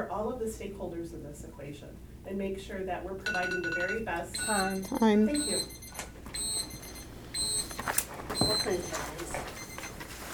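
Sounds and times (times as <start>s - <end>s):
speech: 0.0s - 6.1s, 8.6s - 9.7s
electronic alarm beeps: 3.3s - 10.0s.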